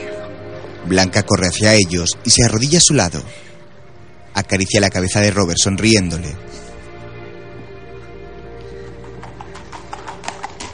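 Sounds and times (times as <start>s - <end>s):
speech: 0.8s - 3.6s, 4.4s - 6.7s
hooves of a horse carrying two riders clip-clopping: 8.9s - 10.7s.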